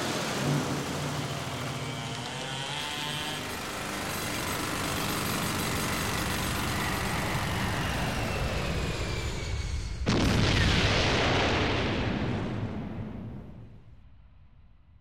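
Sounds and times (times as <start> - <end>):
deep continuous roar: 0.0 - 10.3
sudden loud blast: 9.6 - 14.2.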